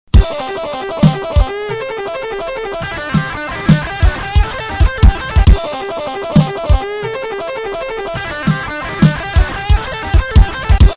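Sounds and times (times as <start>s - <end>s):
swing rhythm in sixteenth notes: 0.1s - 10.9s.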